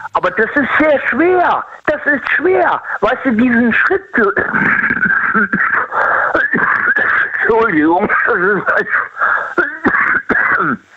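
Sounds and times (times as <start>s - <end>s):
speech: 0.0s - 6.7s, 7.5s - 9.7s, 10.6s - 10.9s
raspy wheezing between coughs: 4.4s - 7.5s, 8.1s - 9.9s
harsh raspy fit of coughing: 4.4s - 10.9s.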